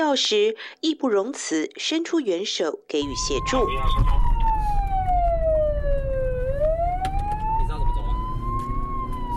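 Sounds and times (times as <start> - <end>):
speech: 0.0 - 4.3
constant rumble of traffic and engine noise: 3.0 - 9.3
police car siren wailing: 3.0 - 9.3.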